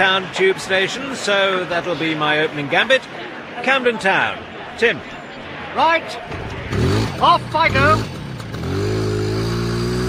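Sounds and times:
speech: 0.0s - 5.2s, 5.8s - 8.1s
small moped engine revving: 6.3s - 10.0s.

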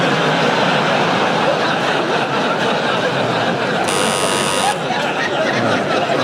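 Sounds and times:
crowd chatter: 0.0s - 6.2s
laughter: 0.0s - 6.2s
loud electronic game-show buzzer: 3.8s - 4.9s.

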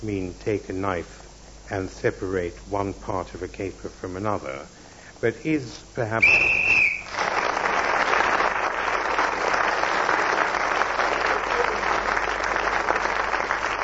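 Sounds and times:
speech: 0.0s - 6.5s
short shrill whistle blast: 6.2s - 7.2s
audience applause: 6.8s - 13.8s.

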